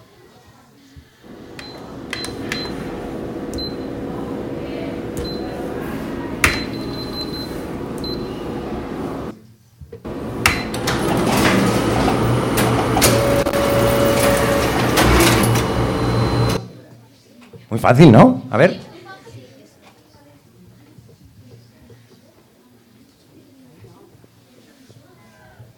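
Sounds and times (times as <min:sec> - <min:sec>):
printer printing pages: 0:01.3 - 0:09.3, 0:10.1 - 0:16.7
speech: 0:17.8 - 0:18.8.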